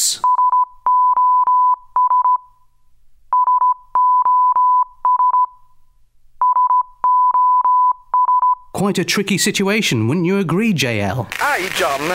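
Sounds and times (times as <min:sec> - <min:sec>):
speech: 0:00.1 - 0:00.4, 0:08.8 - 0:12.1
high-pitched Morse code tone keyed into short and long beeps: 0:00.2 - 0:02.5, 0:03.3 - 0:05.6, 0:06.4 - 0:08.7.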